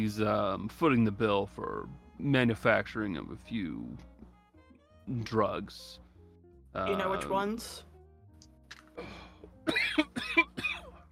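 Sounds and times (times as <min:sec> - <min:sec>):
speech: 0:00.0 - 0:04.1, 0:05.1 - 0:06.0, 0:06.8 - 0:07.9, 0:09.0 - 0:10.5
harsh throaty coughs: 0:09.0 - 0:11.0.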